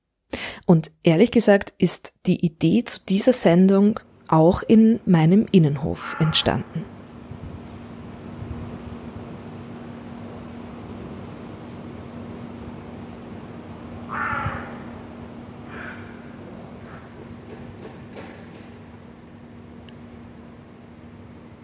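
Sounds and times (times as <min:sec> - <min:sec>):
speech: 0:00.7 - 0:06.9
steady hum of urban noise: 0:01.8 - 0:21.6
crow cawing in the inner courtyard of an old apartment building: 0:06.0 - 0:06.8, 0:14.1 - 0:15.0, 0:15.6 - 0:17.2.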